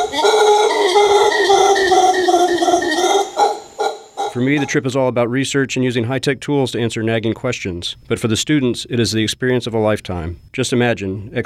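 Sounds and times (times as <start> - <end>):
howler monkeys howling: 0.0 - 4.8
speech: 4.4 - 11.4.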